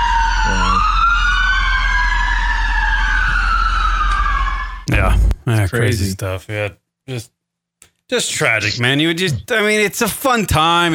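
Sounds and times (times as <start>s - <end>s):
ambulance sirens wailing as ambulances arrive at an arena: 0.0s - 4.9s
speech: 5.6s - 7.4s, 8.1s - 10.9s.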